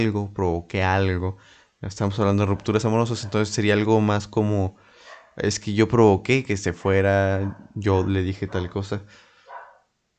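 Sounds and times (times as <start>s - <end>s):
speech: 0.0s - 4.8s, 5.4s - 9.2s
hiss: 0.0s - 10.1s
dog barking: 2.1s - 3.8s, 5.0s - 5.4s, 7.3s - 9.9s.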